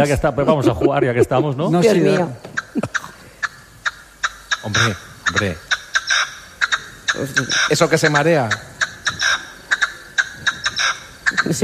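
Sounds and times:
speech: 0:00.0 - 0:03.1, 0:04.6 - 0:05.7, 0:07.1 - 0:08.7, 0:11.4 - 0:11.6
laughter: 0:00.0 - 0:03.3
partridge giving harsh clucking chuck notes: 0:02.4 - 0:11.6.

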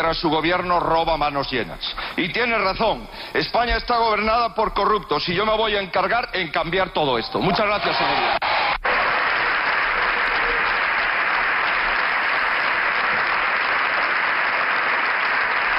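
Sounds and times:
speech: 0:00.0 - 0:08.5
large group applauding in a big room: 0:07.4 - 0:15.7.

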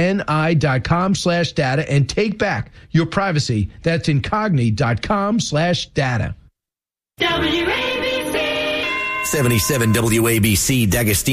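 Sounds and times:
speech: 0:00.0 - 0:06.4, 0:07.2 - 0:07.9, 0:09.2 - 0:11.3
radio station electronic time chime jingle: 0:07.2 - 0:11.3.

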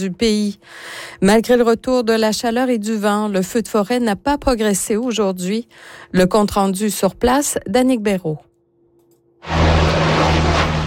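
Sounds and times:
speech: 0:00.0 - 0:08.5
firefighting water bomber aircraft engine roar over a forest fire in Gironde: 0:09.4 - 0:10.8.

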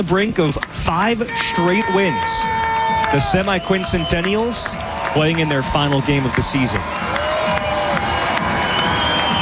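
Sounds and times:
speech: 0:00.0 - 0:07.2
big baseball stadium crowd roaring and cheering: 0:00.1 - 0:09.3
whistles from baseball stadium crowd: 0:03.2 - 0:05.3, 0:06.9 - 0:09.3.

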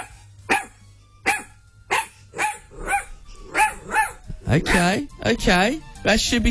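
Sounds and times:
dog barking: 0:00.0 - 0:04.4
speech: 0:04.5 - 0:06.5.

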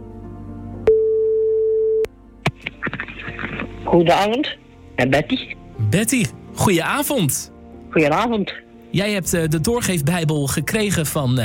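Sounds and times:
telephone ringing tone on an outgoing call: 0:00.9 - 0:02.1
speech: 0:03.9 - 0:11.4.

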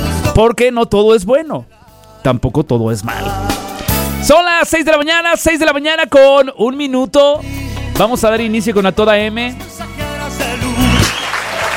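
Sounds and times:
speech: 0:00.4 - 0:03.4, 0:04.2 - 0:09.8
applause: 0:11.0 - 0:11.7.

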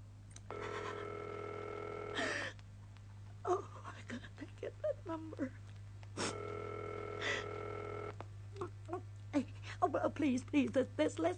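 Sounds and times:
low electrical hum: 0:00.0 - 0:11.3
telephone line ring tone: 0:00.5 - 0:02.4, 0:06.3 - 0:08.2
speech: 0:05.1 - 0:05.6, 0:09.9 - 0:11.3.

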